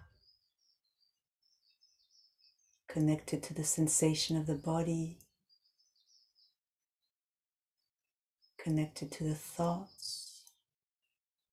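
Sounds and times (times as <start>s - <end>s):
faint birds chirping outdoors: 0.0s - 6.6s, 8.4s - 10.7s
speech: 2.9s - 5.3s, 8.7s - 10.2s.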